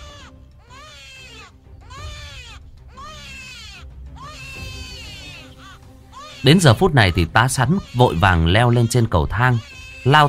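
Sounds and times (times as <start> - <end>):
newborn baby crying loudly: 0.0 - 10.2
speech: 6.4 - 10.2.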